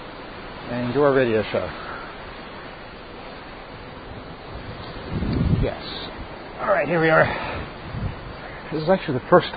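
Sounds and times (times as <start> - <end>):
ocean water washing heard from the open deck of a ship: 0.0 - 9.5
speech: 0.7 - 1.8, 6.6 - 7.7, 8.7 - 9.5
wind rushing on the open deck of a ship: 1.6 - 8.8.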